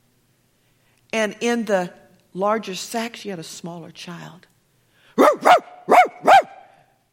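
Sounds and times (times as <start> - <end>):
speech: 1.2 - 4.5
dog barking: 5.2 - 6.8.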